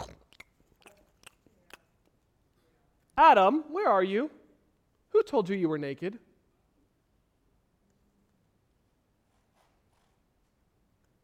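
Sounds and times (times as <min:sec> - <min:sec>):
crunchy bite and crisp chewing crunches: 0:00.0 - 0:02.3
speech: 0:03.2 - 0:04.4, 0:05.1 - 0:06.3.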